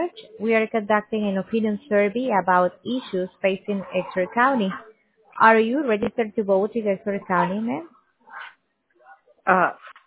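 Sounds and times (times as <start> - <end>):
speech: 0.0 - 8.4, 9.5 - 9.9
dogs barking during a phone call: 3.0 - 4.9.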